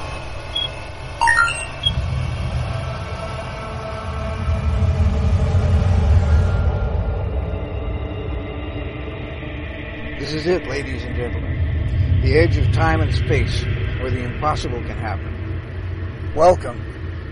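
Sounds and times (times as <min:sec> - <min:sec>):
deep sci-fi magnetic resonance field hum: 0:00.0 - 0:17.3
rising electronic chirps: 0:00.5 - 0:02.0
speech: 0:10.4 - 0:11.6, 0:12.2 - 0:15.3, 0:16.4 - 0:16.9.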